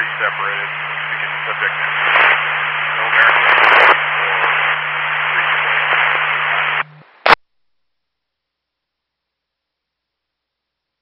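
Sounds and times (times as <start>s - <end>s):
radio static: 0.0s - 7.4s
speech: 0.2s - 0.9s, 1.5s - 2.2s.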